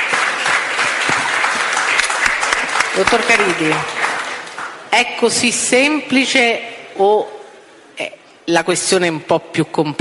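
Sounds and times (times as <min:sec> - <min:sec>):
audience applauding a guest at a panel discussion: 0:00.0 - 0:04.9
speech: 0:03.0 - 0:04.0, 0:04.9 - 0:07.4, 0:08.0 - 0:09.9.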